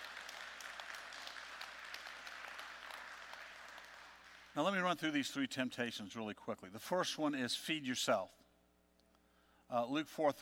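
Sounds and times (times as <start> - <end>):
church audience applauding during a sermon: 0.0 - 4.6
speech: 4.6 - 8.4, 9.7 - 10.3.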